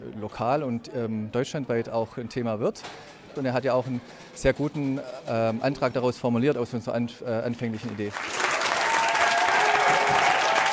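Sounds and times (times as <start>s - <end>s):
speech: 0.0s - 8.4s
audience in spectator rows applauding and cheering a council vote result: 7.9s - 10.7s.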